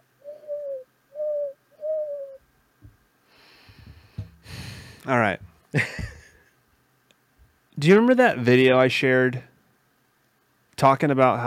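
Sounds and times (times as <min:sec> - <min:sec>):
bird call sound effect of low hooting coos: 0:00.0 - 0:02.4
speech: 0:05.0 - 0:06.1, 0:07.8 - 0:09.5, 0:10.8 - 0:11.4.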